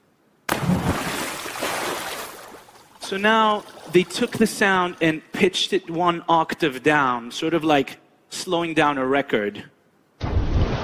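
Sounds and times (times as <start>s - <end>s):
swimming pool water churning and splashing: 0.5s - 5.0s
speech: 3.1s - 9.8s.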